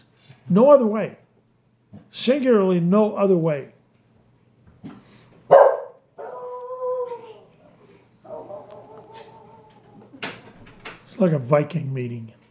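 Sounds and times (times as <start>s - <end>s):
speech: 0.5s - 1.2s, 2.1s - 3.8s, 11.2s - 12.4s
dog barking: 5.5s - 7.2s, 8.3s - 9.6s
dog long drawn-out whining yowls: 5.6s - 7.5s, 8.3s - 10.1s.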